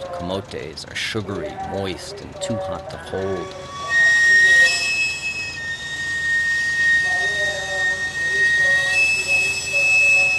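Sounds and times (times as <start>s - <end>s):
low rumble of street noise: 0.0s - 10.3s
speech: 0.2s - 3.9s
sweet potato cart's steam whistle shrieking: 2.5s - 10.3s.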